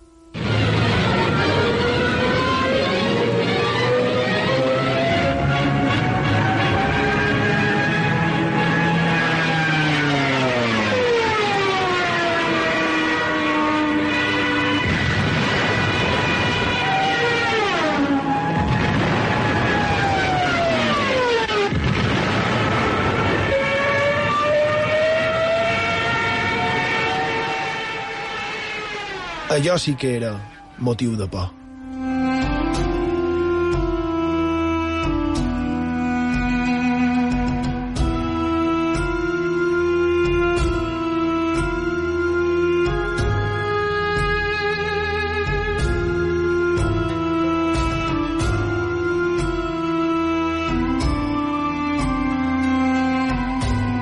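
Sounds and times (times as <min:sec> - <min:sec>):
wailing sirens of dive-bombing planes: 0:00.0 - 0:54.0
speech: 0:29.6 - 0:31.6.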